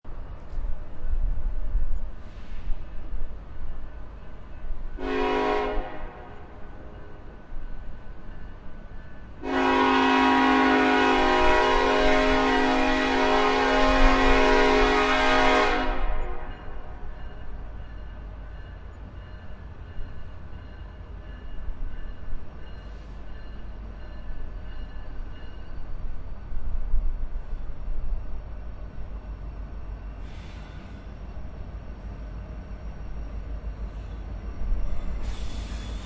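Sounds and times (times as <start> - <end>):
train wheel screeches: 2.0 - 3.2, 16.1 - 28.4, 29.1 - 36.0
train horn: 5.0 - 7.3, 9.4 - 17.3.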